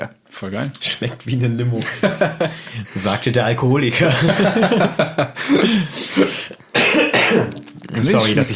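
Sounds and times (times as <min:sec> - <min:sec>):
speech: 0:00.4 - 0:06.6, 0:07.3 - 0:08.5
laughter: 0:00.9 - 0:06.8
person coughing harshly from laughing: 0:05.4 - 0:07.7.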